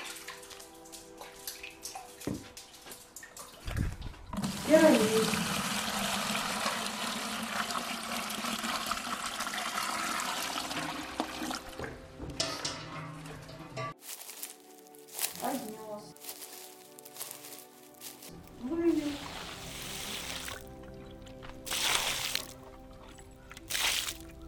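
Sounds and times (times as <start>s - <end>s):
water sloshing and trickling: 0.0s - 24.4s
water poured from a bucket gushing and splashing: 3.6s - 11.8s, 18.9s - 22.7s, 23.6s - 24.3s
person speaking: 15.3s - 16.2s, 18.5s - 19.4s.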